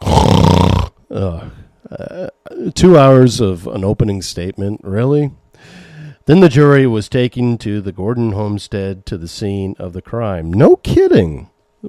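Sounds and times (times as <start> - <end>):
person yawning loudly: 0.0 - 2.6
speech: 1.2 - 11.8.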